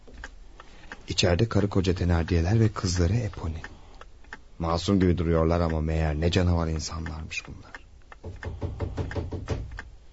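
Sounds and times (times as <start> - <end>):
speech: 1.1 - 3.7, 4.6 - 8.5
knocking on a door: 8.2 - 9.8.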